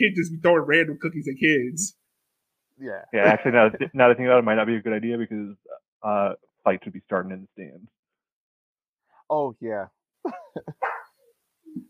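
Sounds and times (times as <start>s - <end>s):
speech: 0.0s - 2.0s, 2.8s - 8.0s, 9.3s - 10.9s
laughter: 3.0s - 4.3s, 10.3s - 11.0s
dog barking: 10.8s - 11.1s.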